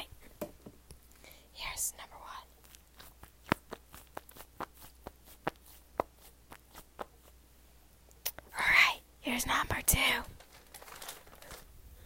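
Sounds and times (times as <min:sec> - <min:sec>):
squishy ball being squeezed: 0:02.5 - 0:07.4
speech: 0:09.4 - 0:10.3.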